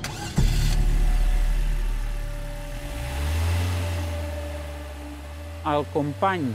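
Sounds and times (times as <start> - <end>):
car engine cranking, starting and idling: 0.0 - 6.5
speech: 5.7 - 6.5.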